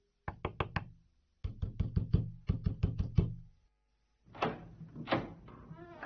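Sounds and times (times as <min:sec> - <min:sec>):
hard knocking on a door: 0:01.5 - 0:03.4.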